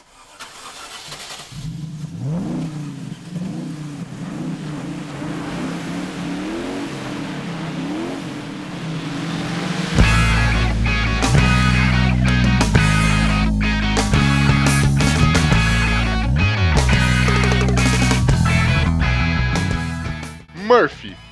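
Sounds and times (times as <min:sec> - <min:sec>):
car engine revving and accelerating: 0:00.0 - 0:20.5
harsh noise burst as car overturns: 0:08.9 - 0:18.8.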